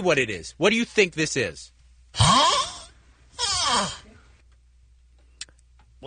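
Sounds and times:
speech: 0.0 - 2.6
man snoring: 2.2 - 4.1.

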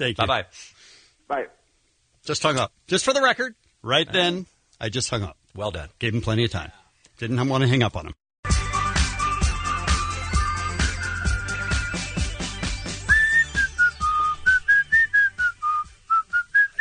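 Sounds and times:
speech: 0.0 - 1.6, 2.2 - 8.2
rhythmic music track with a steady beat: 8.4 - 16.4
person whistling a tune: 9.2 - 12.3, 13.0 - 16.7.

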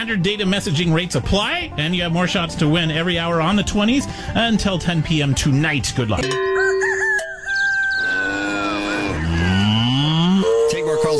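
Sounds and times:
speech: 0.0 - 6.5
higher-pitched farmyard calls: 6.5 - 11.1
cow giving a long low moo: 8.0 - 11.1.

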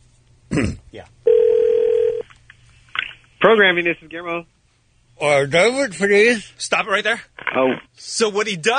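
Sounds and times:
speech: 0.6 - 1.2, 3.4 - 4.5, 5.2 - 8.7
telephone line ringing tone: 1.3 - 2.2.

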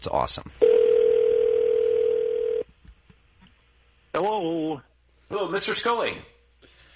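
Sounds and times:
speech: 0.0 - 0.6, 4.2 - 6.3
telephone ringing with a long steady electronic tone: 0.6 - 2.6.

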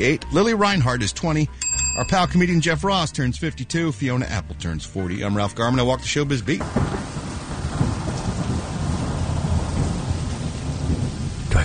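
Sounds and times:
speech: 0.0 - 7.1
deep continuous thunder rumble: 6.5 - 11.6
heavy rain hissing: 6.5 - 11.6.

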